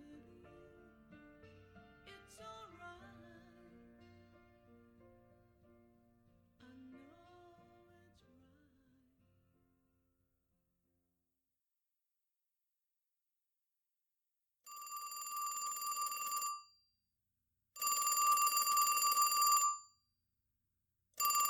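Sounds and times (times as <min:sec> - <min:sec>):
soft song: 0:00.0 - 0:09.6
telephone bell ringing: 0:14.7 - 0:16.8, 0:17.8 - 0:20.0, 0:21.2 - 0:21.4.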